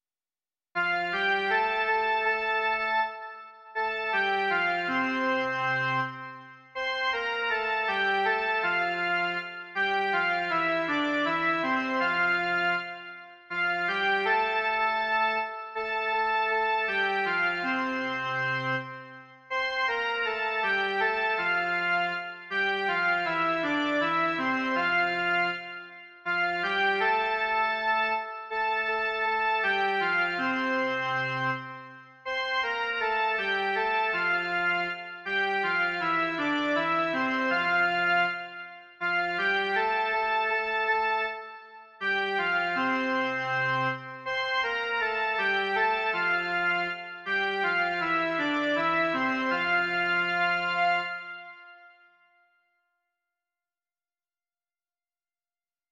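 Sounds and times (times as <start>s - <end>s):
male version of a Czech Easter and Pentecost hymn melody: 0.8s - 52.1s.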